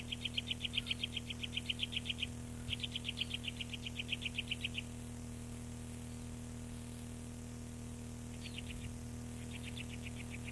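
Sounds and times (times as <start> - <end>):
Eurasian nuthatch song: 0.0 - 4.9, 8.4 - 10.4
steady low hum: 0.0 - 10.4.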